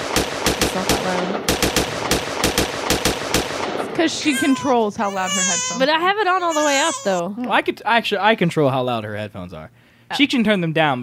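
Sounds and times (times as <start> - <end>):
rapid gunfire from a video game weapon: 0.0 - 4.0
speech: 0.8 - 1.6, 4.0 - 11.0.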